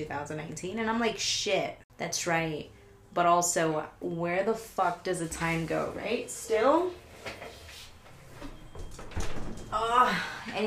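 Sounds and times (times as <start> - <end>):
speech: 0.0 - 7.5, 9.8 - 10.6
door being opened: 8.1 - 10.0.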